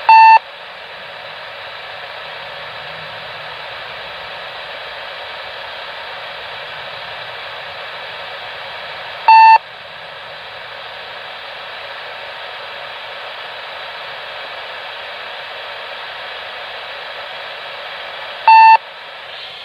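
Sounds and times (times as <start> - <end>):
Motorola trunked radio system failsoft tone from failed site controller: 0.1 - 0.5, 2.5 - 10.5, 18.4 - 19.5.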